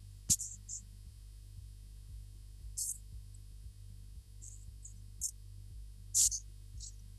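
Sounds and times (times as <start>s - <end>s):
faint steady low electrical hum on a dropped phone line: 0.0s - 7.1s
brief sharp high-pitched chirps and crackles on a phone line: 0.3s - 0.8s, 2.8s - 3.0s, 4.4s - 5.4s, 6.2s - 7.0s.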